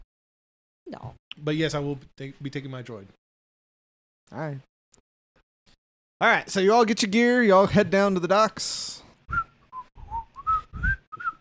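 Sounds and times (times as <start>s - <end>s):
speech: 0.9s - 3.2s, 4.3s - 5.0s, 6.2s - 9.4s
person whistling a short bouncy traveling song: 9.3s - 11.3s.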